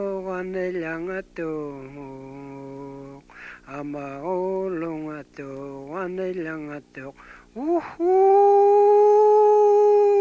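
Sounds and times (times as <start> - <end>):
speech: 0.0 - 2.6, 3.7 - 10.1
human voice imitating a wolf howl: 7.6 - 10.1.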